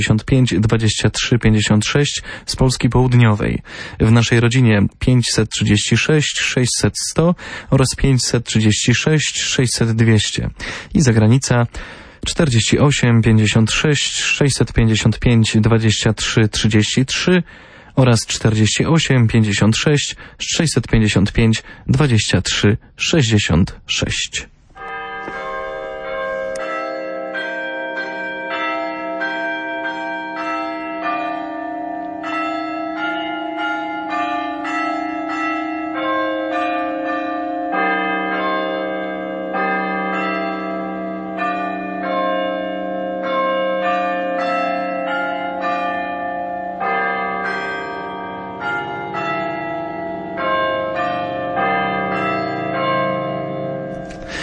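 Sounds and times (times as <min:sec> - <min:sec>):
church bells ringing a slow hymn melody: 0:00.0 - 0:02.2, 0:12.4 - 0:17.3, 0:24.8 - 0:54.4
speech: 0:00.0 - 0:24.6.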